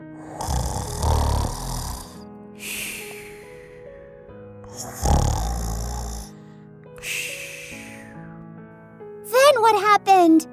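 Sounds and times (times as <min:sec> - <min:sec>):
voice imitating loud rattling snoring: 0:00.0 - 0:03.6, 0:04.7 - 0:06.3, 0:07.0 - 0:08.1
speech: 0:09.7 - 0:10.5.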